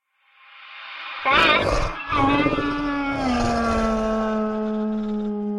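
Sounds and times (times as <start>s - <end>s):
hounds roaring: 1.3s - 5.4s.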